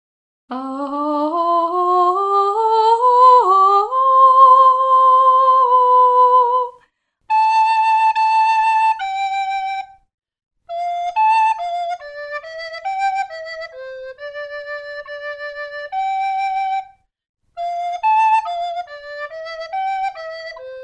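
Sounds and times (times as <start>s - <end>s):
female vocal: 0.5s - 6.9s
soprano recorder: 0.5s - 10.1s, 10.7s - 20.8s.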